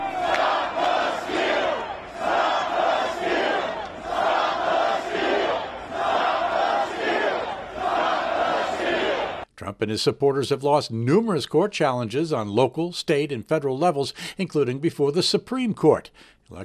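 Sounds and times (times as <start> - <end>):
protest crowd chanting a slogan in unison: 0.0 - 9.5
speech: 9.8 - 16.6.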